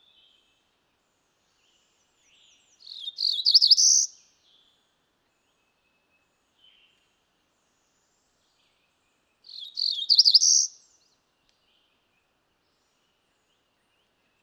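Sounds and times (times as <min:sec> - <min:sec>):
female cerulean warbler buzzy song: 0:02.3 - 0:04.2, 0:09.5 - 0:11.0.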